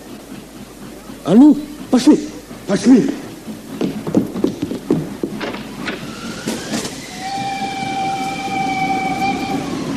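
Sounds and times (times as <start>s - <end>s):
armored steam train chugging: 0.0s - 9.9s
speech: 1.2s - 3.2s
armored steam train whistle: 6.0s - 9.9s.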